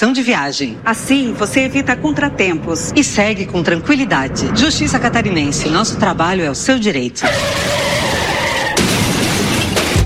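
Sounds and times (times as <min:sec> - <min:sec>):
speech: 0:00.0 - 0:07.9
car tires screeching: 0:01.2 - 0:09.9
car crash with crunching shattering debris: 0:07.2 - 0:10.0.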